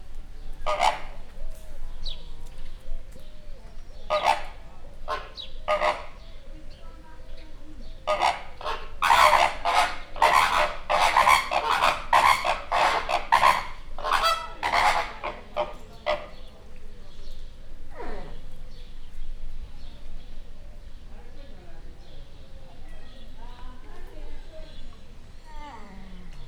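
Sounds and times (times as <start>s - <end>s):
roseate flamingos calling to each other in a zoo: 0.4s - 1.4s, 4.0s - 16.7s.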